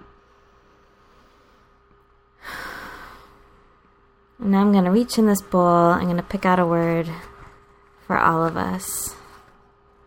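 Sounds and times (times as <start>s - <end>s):
faint steady hum in a studio: 0.0s - 10.0s
deep breath: 0.2s - 3.9s
speech: 4.4s - 7.3s, 8.1s - 9.2s.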